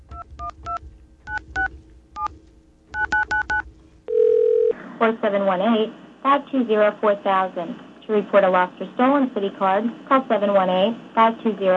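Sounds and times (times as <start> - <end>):
telephone keypad beeps: 3.0 - 4.7
steady phone tone: 3.0 - 4.8
recorded-sounding voice speaking over the line: 5.0 - 11.7
speech: 5.0 - 11.7.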